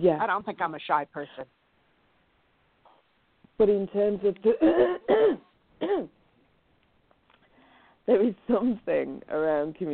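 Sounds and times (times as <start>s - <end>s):
speech: 0.0s - 1.6s, 3.6s - 6.2s, 8.1s - 9.9s
person clearing throat: 4.6s - 6.1s.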